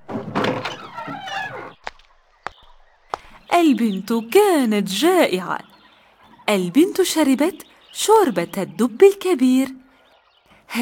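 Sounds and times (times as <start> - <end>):
door creaking open with a drawn-out groan: 0.0 - 1.8
speech: 3.6 - 5.7, 6.5 - 9.8.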